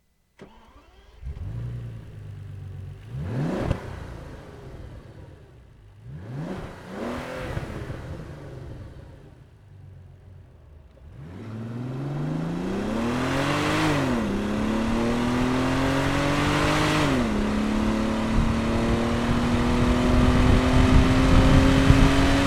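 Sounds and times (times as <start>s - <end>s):
Bentley Continental GT W12 engine: 0.4s - 22.4s.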